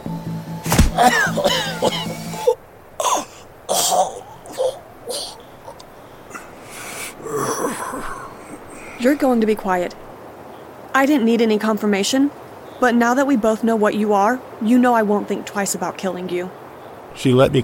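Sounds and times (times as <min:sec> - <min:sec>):
speech: 0:01.0 - 0:02.0, 0:09.2 - 0:10.1, 0:11.0 - 0:16.6, 0:17.2 - 0:17.6
man choking and coughing after a throat blow: 0:01.0 - 0:09.3.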